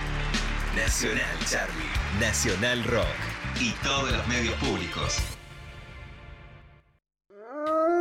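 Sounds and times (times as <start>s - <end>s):
speech: 0.8s - 5.4s
insistent howl: 7.4s - 7.9s.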